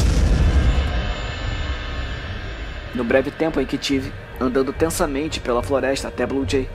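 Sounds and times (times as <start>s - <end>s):
deafening explosion boom: 0.0s - 4.9s
speech: 3.0s - 6.7s.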